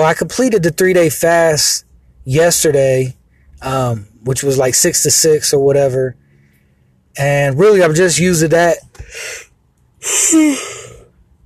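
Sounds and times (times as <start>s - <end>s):
speech: 0.0s - 6.2s, 7.2s - 9.3s, 10.0s - 10.7s
short breath: 6.2s - 7.0s, 9.0s - 11.2s
yawn: 9.1s - 11.1s.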